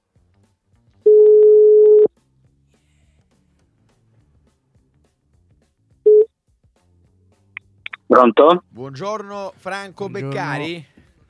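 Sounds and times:
outgoing call ringback tone: 1.1s - 2.1s, 6.1s - 6.3s
speech: 8.2s - 10.9s.

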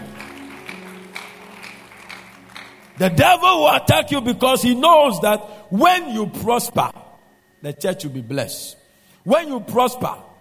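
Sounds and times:
audience clapping in unison: 0.0s - 3.3s
sustained low musical drone: 0.0s - 10.3s
speech: 3.0s - 7.0s, 7.6s - 10.3s.

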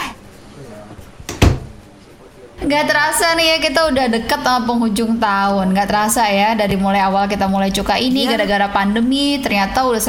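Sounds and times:
door swinging shut with a scrape and thud: 1.3s - 1.8s
speech: 2.6s - 10.0s.

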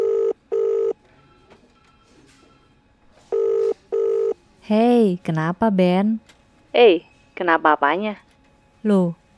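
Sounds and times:
telephone ringback tones on an outgoing call: 0.0s - 4.4s
speech: 4.7s - 8.2s, 8.8s - 9.2s.

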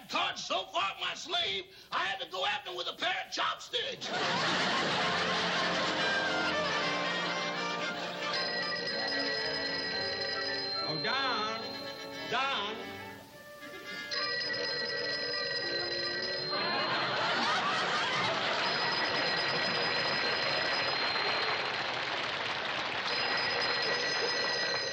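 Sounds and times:
speech: 0.1s - 6.2s
crowd laughing and chuckling: 4.0s - 9.6s, 13.6s - 14.3s, 16.2s - 22.8s
telephone bell ringing: 4.3s - 22.4s, 23.0s - 24.9s.

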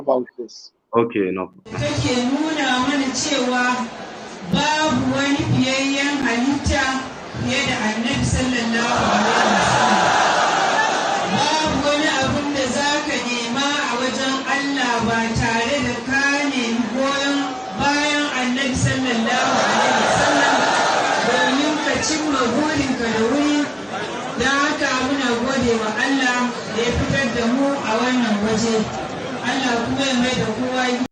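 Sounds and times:
large crowd of followers chattering and calling out: 0.0s - 31.0s
speech: 0.1s - 10.2s, 26.8s - 31.0s
large crowd of followers cheering: 1.8s - 14.9s, 16.1s - 24.7s.

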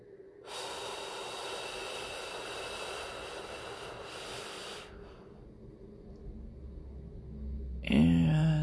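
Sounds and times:
slow deep breath drawn in during a guided relaxation: 0.4s - 5.4s
person speaking: 7.8s - 8.6s.

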